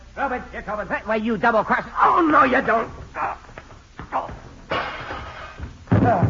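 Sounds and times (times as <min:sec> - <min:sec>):
speech: 0:00.2 - 0:03.4
heavy thud of a man crashing through glass doors: 0:04.0 - 0:06.2
loud impact and clatter: 0:04.6 - 0:06.2.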